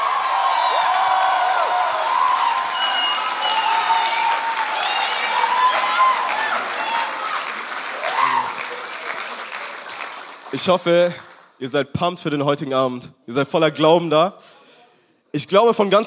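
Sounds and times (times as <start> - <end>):
scattered whoops and cheers: 0.0 - 9.3
large crowd applauding: 0.0 - 11.6
speech: 10.6 - 14.5, 15.3 - 16.0.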